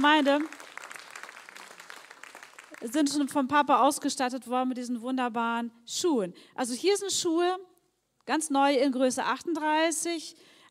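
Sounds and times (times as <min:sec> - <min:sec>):
speech: 0:00.0 - 0:00.6, 0:02.8 - 0:07.7, 0:08.3 - 0:10.7
audience applauding: 0:00.0 - 0:03.1.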